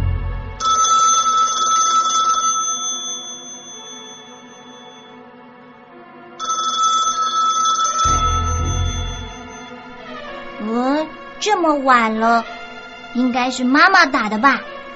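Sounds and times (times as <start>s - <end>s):
faint low rumble: 0.0s - 0.6s, 8.1s - 9.7s
telephone ringing with bright electronic trill: 0.6s - 5.2s, 6.4s - 9.9s
speech: 11.5s - 12.6s, 13.2s - 14.7s.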